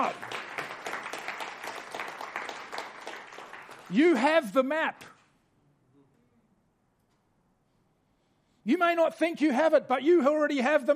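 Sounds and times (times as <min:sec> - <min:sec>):
audience clapping: 0:00.0 - 0:04.7
speech: 0:03.9 - 0:05.1, 0:08.7 - 0:10.9.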